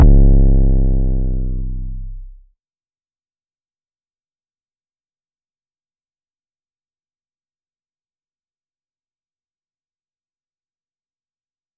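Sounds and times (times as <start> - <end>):
kick drum rumble: 0.0 - 2.4.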